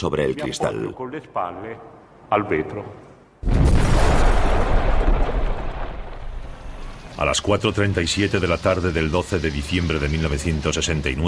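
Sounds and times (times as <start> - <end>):
speech: 0.0 - 3.6, 7.2 - 11.2
bomb explosion in a bank branch on a city square in Milan: 3.4 - 7.2.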